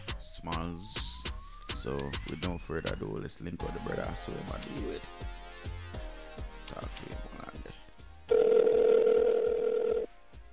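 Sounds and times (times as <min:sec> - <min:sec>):
speech: 0:00.2 - 0:05.3, 0:06.7 - 0:07.3
electronic telephone ring tone over a phone line: 0:08.3 - 0:10.1
quiet phone line noise: 0:08.3 - 0:10.1.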